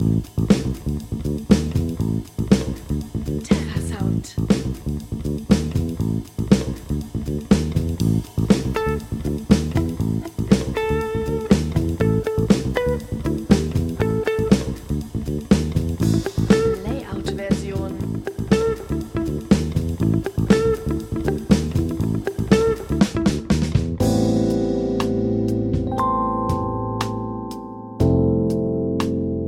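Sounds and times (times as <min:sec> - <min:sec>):
jumping jazz music: 0:00.0 - 0:29.4.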